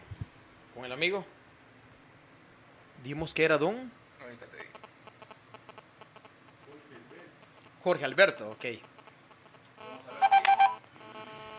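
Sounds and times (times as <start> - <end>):
speech: 0.8 - 1.4, 3.0 - 4.8, 7.8 - 8.9
telephone keypad tones as a number is dialed: 9.8 - 11.5.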